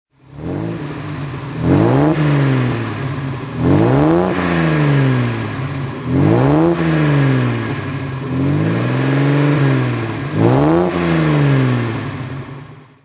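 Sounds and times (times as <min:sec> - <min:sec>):
Mercedes 300S roadster engine throttle: 0:00.2 - 0:12.9.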